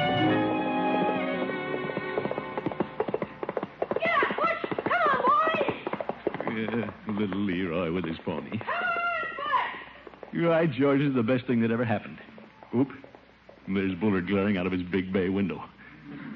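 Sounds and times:
pony hooves clip-clopping: 0.2 - 14.7
speech: 10.4 - 13.1, 13.7 - 15.7.

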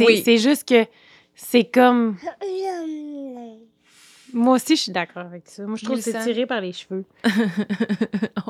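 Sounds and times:
speech: 0.0 - 3.1, 4.3 - 8.4
baby cooing: 2.2 - 3.8
laughter: 7.3 - 8.4.

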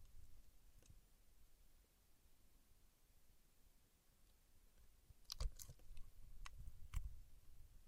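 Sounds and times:
paraffin wax crackling and snapping from peeling and tapping: 5.2 - 7.1.

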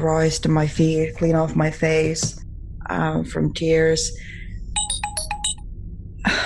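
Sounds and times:
speech: 0.0 - 4.4
low rumble: 0.0 - 6.4
melodic electronic phone ringtone: 4.8 - 5.6.

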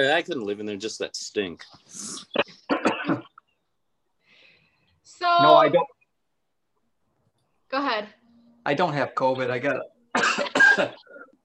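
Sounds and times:
speech: 0.0 - 3.2, 5.2 - 5.9, 7.7 - 11.1
person coughing from a dog hair caught in the throat: 2.4 - 3.4, 10.1 - 11.4.

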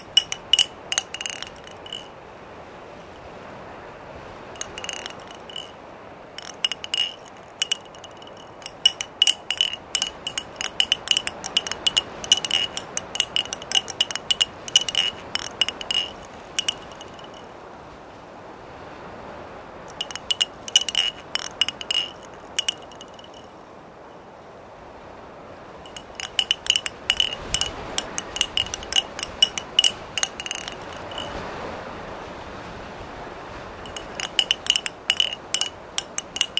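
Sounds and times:
wooden wind chimes clattering in the breeze: 0.0 - 2.1, 4.6 - 5.8, 6.4 - 17.5, 19.9 - 23.6, 25.9 - 31.4, 33.9 - 36.5
soft steady hiss of wind: 0.0 - 36.5.

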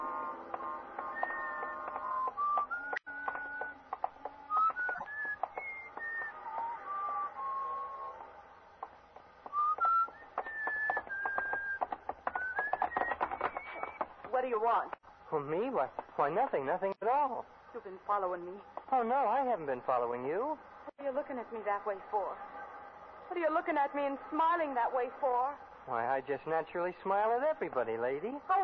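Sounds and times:
sharp clicks and taps: 0.5 - 7.3, 8.2 - 15.0
person whistling a tune while walking along a street: 1.1 - 3.8, 4.5 - 8.2, 9.5 - 14.0
speech: 14.5 - 22.6, 23.3 - 28.6.

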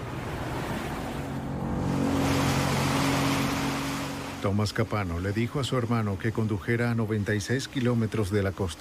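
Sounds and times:
low droning hum like a boat engine: 0.0 - 5.3
ocean water rushing around a boat in the Atlantic: 0.0 - 8.7
speech: 4.4 - 8.7.

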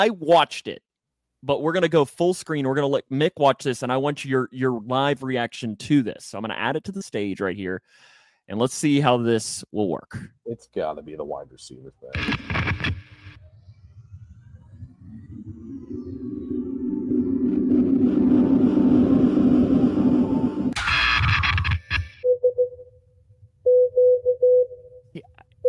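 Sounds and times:
speech: 0.0 - 13.0
burst of harsh noise: 12.2 - 13.4, 16.7 - 22.2
low drone: 13.2 - 22.2
short electronic beeps in an irregular on-off pattern: 22.2 - 23.0, 23.7 - 25.6.

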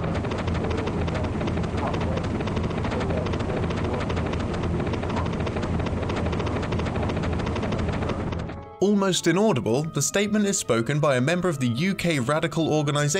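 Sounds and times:
helicopter rotor noise: 0.0 - 13.1
speech: 8.8 - 13.1.

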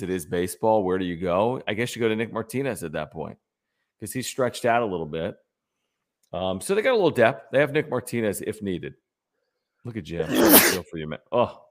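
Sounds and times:
speech: 0.0 - 3.4, 4.0 - 5.4, 6.3 - 9.0, 9.8 - 11.6
loud sharp sneeze: 10.2 - 10.8.

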